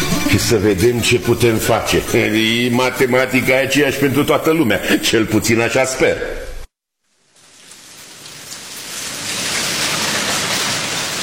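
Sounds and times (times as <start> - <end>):
speech: 0.3 - 6.4
steady rain falling: 7.0 - 11.2.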